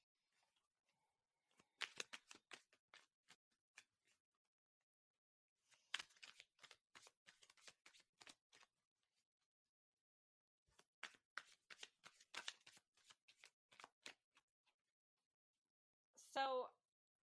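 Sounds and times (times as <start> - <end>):
deck of tarot cards being shuffled: 1.5 - 3.9, 5.7 - 8.7, 10.8 - 14.4.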